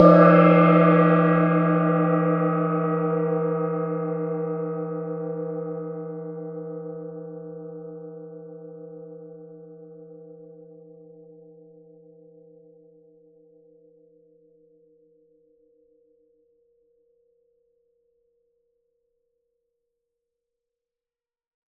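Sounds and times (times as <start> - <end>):
small gong: 0.0 - 14.9.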